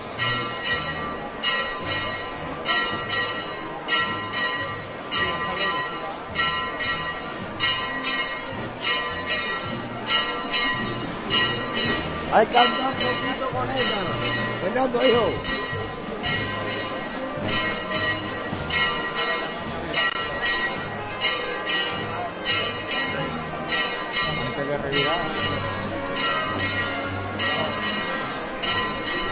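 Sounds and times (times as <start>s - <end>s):
church bells pealing in farewell to the Virgen Chiquita in Huelva: 0.0s - 29.2s
outdoor festive crowd noise with voices in Huelva: 0.0s - 29.2s
speech: 12.4s - 12.8s, 14.8s - 15.5s.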